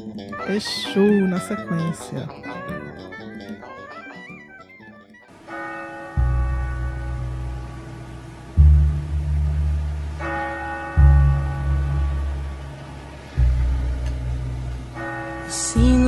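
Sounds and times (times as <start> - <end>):
speech: 0.2 - 2.7
small church bell ringing: 5.3 - 16.0
deep rumbling low drone: 6.2 - 16.0.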